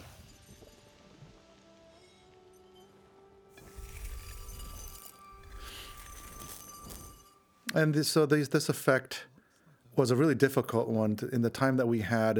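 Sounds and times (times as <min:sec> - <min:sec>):
busy tinkling and rustling: 0:03.6 - 0:07.5
glass chinking and clinking: 0:03.6 - 0:07.5
speech: 0:07.8 - 0:09.3, 0:10.0 - 0:12.3.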